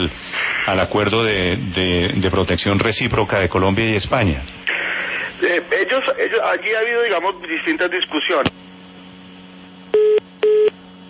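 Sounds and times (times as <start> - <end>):
speech: 0.0 - 4.7, 5.4 - 8.6
busy-signal beeps on a phone line after a call is cut off: 9.9 - 10.7.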